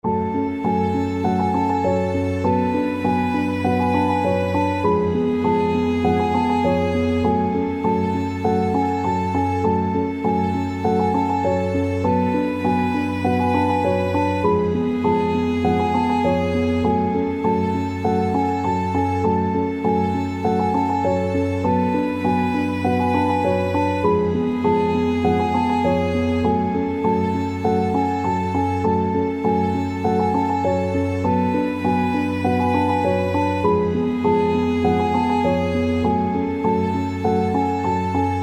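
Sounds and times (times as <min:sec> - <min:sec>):
sad piano: 0:00.0 - 0:38.4
violin: 0:00.0 - 0:38.4.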